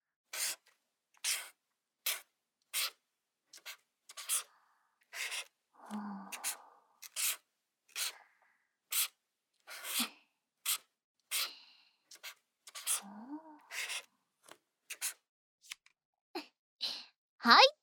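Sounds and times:
felt-tip pen squeaking and scratching across a playing card: 0.3 - 4.5, 5.1 - 5.6, 6.3 - 8.2, 8.9 - 11.5, 12.1 - 13.0, 13.6 - 14.1, 14.9 - 15.2
speech: 17.5 - 17.7.

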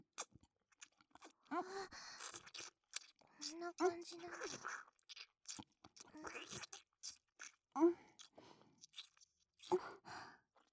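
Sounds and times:
lips gently nibbling the outer ear with wet crunchy mouth clicks: 0.2 - 1.4, 2.2 - 7.6, 8.1 - 9.8
speech: 3.5 - 5.0, 6.2 - 6.8, 7.8 - 8.0.

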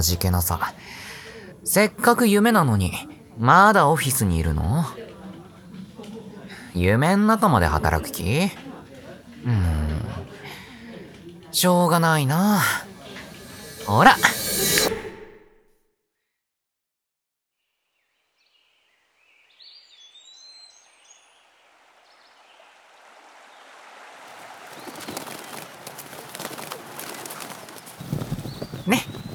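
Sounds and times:
speech: 0.0 - 5.1, 6.8 - 8.7, 9.4 - 10.2, 11.6 - 12.9, 13.8 - 14.4
birds chirping and singing in a forest: 24.7 - 29.3.

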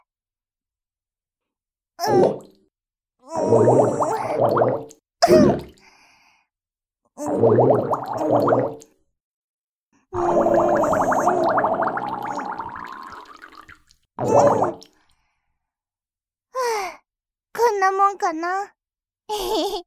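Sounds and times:
speech: 2.1 - 2.5, 3.3 - 5.6, 7.3 - 8.9, 18.3 - 19.8
bubbly underwater bursts of trapped air in a washbasin: 3.5 - 5.8, 7.2 - 8.9, 10.1 - 15.0.

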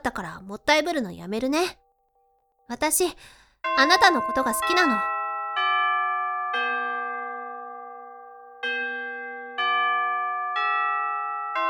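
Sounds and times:
speech: 0.0 - 1.8, 2.7 - 5.1
school chime with bright bell-like tones: 3.6 - 11.6.

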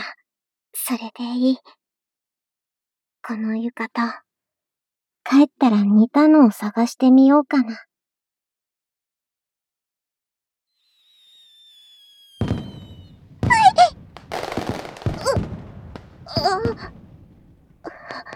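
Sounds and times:
speech: 0.9 - 1.8, 3.3 - 4.2, 5.3 - 7.9, 16.4 - 17.0
thin rising firework whistle: 10.7 - 18.3.

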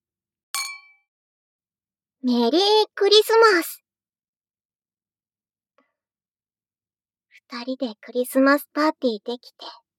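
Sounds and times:
glasses clinking in a toast at a Christmas party: 0.6 - 1.0
speech: 2.2 - 3.8, 7.5 - 9.8.

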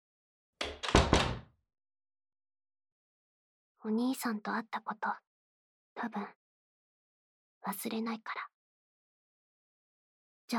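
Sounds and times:
door swinging shut into the frame: 0.6 - 1.5
speech: 3.8 - 5.3, 6.0 - 6.4, 7.6 - 8.5.

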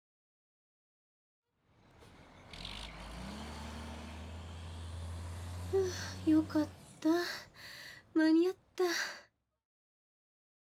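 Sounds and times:
garbage truck engine drone: 1.6 - 8.7
speech: 5.9 - 7.5, 8.2 - 9.2.

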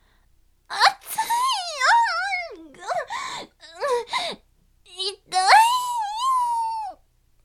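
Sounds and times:
voice actor performing a loud childlike wailing cry: 0.7 - 4.2, 4.9 - 7.0.

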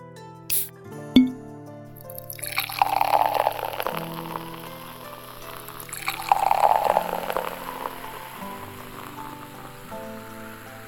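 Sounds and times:
beer opening clicks: 0.5 - 1.4
beer pouring with fizzy splashing: 0.5 - 1.4, 2.0 - 10.8.

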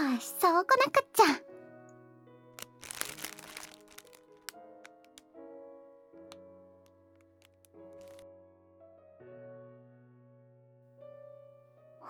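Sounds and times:
speech: 0.2 - 1.4
Pocky biscuit stick being bitten: 2.6 - 5.3, 7.2 - 8.2.

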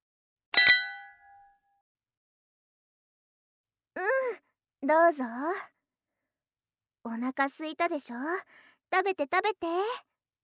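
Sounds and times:
glasses clinking together in a toast: 0.6 - 1.3
speech: 4.0 - 5.7, 7.0 - 10.1.

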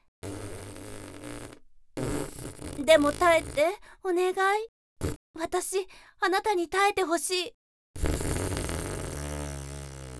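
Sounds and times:
fart: 0.2 - 3.7, 5.0 - 5.2, 8.0 - 10.1
speech: 2.8 - 4.7, 5.4 - 8.1.

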